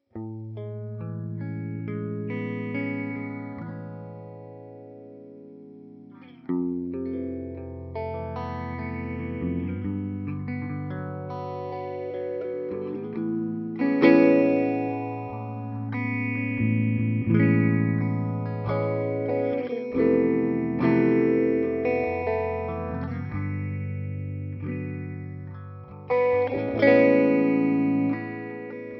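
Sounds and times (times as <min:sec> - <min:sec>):
electric guitar with four-stage phasing effect: 0:00.0 - 0:28.9.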